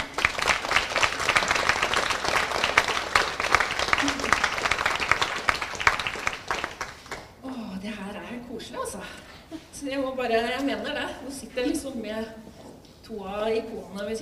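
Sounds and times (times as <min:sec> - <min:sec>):
crowd applause welcoming an author at a book event: 0:00.0 - 0:07.4
speech: 0:10.2 - 0:12.5, 0:13.1 - 0:14.2.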